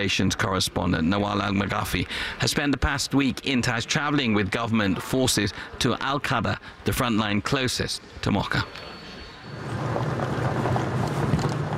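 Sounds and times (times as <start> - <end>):
speech: 0.0 - 8.9
wind buffeting: 9.2 - 11.7
military vehicle driving through valleys: 9.5 - 11.7.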